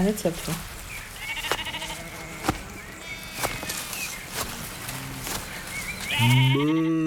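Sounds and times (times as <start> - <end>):
noisy outdoor background: 0.0 - 7.0
sheep bleating: 1.2 - 3.8, 4.4 - 7.0.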